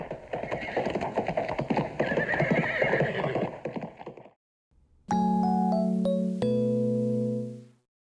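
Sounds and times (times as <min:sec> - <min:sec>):
hooves of two horses galloping off: 0:00.0 - 0:04.2
ringing sustained musical chimes: 0:05.1 - 0:07.8.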